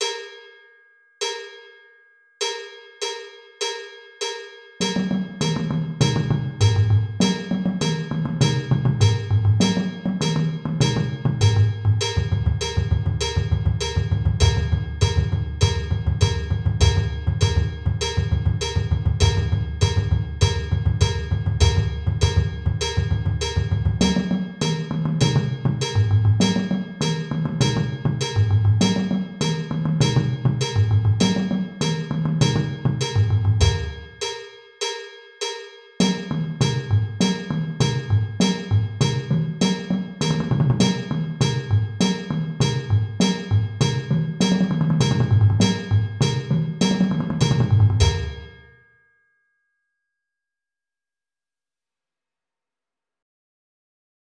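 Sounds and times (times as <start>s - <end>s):
bass notes: 4.8s - 34.3s, 36.0s - 48.6s.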